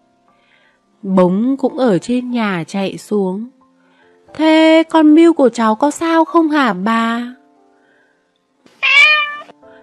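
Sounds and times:
speech: 1.0 - 3.6, 4.3 - 7.4
kitten meowing: 8.8 - 9.5.

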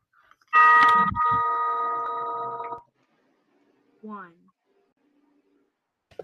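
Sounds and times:
clock chime ringing: 0.5 - 2.8.

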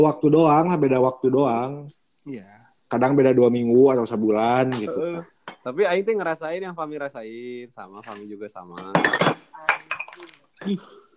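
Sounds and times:
speech: 0.0 - 11.0
glass bottles for betta fish clinking and knocking together: 4.8 - 5.7, 8.0 - 10.8.

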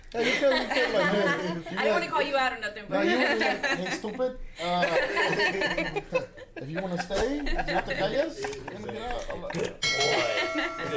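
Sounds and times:
laughter: 0.0 - 2.1, 2.9 - 10.9
speech: 0.1 - 10.9
bell ringing: 9.8 - 10.9.

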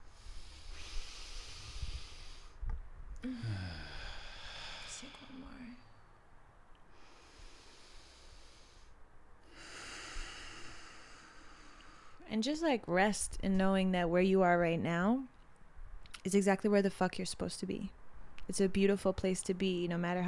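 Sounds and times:
person taking slow deep breaths: 0.0 - 2.6, 3.2 - 6.1, 6.9 - 12.2
speech: 3.2 - 3.8, 12.3 - 15.3, 16.2 - 20.2.

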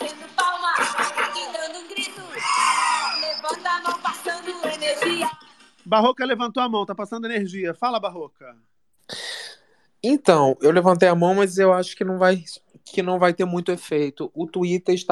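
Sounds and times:
laughter: 0.4 - 2.4
people shouting and cheering: 2.2 - 3.6
high excited yelps: 2.3 - 3.6
speech: 5.9 - 9.2, 10.0 - 15.0.

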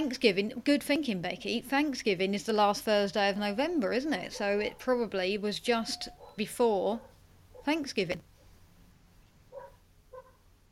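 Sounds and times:
speech: 0.1 - 8.3
dog barking: 4.3 - 4.9, 5.8 - 6.4, 7.0 - 7.8, 9.5 - 10.4.

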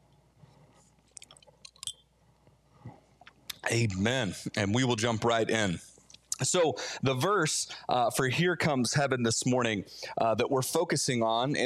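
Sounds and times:
person sipping and slurping tea: 0.9 - 2.0
speech: 3.7 - 11.6.

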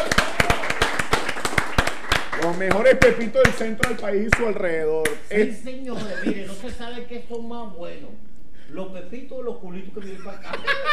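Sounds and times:
small group applauding eatery staff in Valencia: 0.0 - 5.2
speech: 2.5 - 10.9
laughter: 5.9 - 6.8, 10.0 - 10.9.

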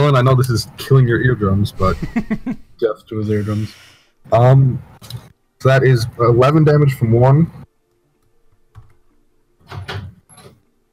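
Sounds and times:
speech: 0.1 - 7.6
door being opened: 9.6 - 10.7.

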